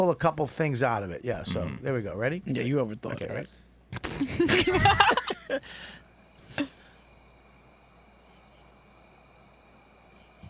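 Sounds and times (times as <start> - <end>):
speech: 0.0 - 6.0
laughter: 4.1 - 5.7
crickets chirping at night: 4.5 - 10.4.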